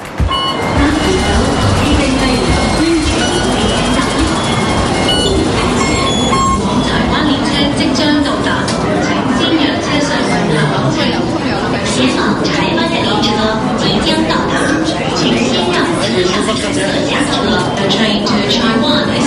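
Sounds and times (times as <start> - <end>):
indistinct voices murmuring: 0.0 - 19.2
metro train rumbling through an enclosed underground station: 0.0 - 19.2
thin metallic squeals and whining tones of a metro train: 0.4 - 7.1.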